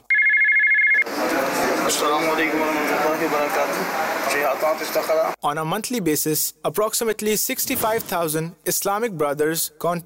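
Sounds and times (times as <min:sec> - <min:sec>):
electronic telephone ring tone: 0:00.0 - 0:01.1
busy noise: 0:01.0 - 0:05.4
speech: 0:01.9 - 0:10.0.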